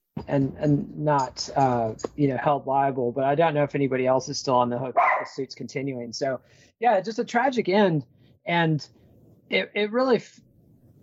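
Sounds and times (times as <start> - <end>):
speech: 0.3 - 10.4
dog barking: 5.0 - 5.4.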